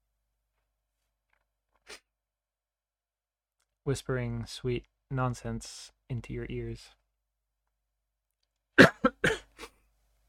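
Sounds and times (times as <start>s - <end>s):
speech: 3.9s - 7.0s
person coughing: 8.8s - 9.7s.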